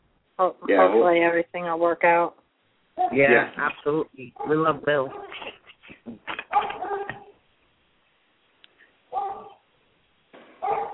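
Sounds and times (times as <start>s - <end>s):
speech: 0.4s - 2.4s, 3.0s - 5.5s
Great Danes barking next door: 4.3s - 5.6s, 6.4s - 7.4s, 9.1s - 9.7s, 10.5s - 10.9s.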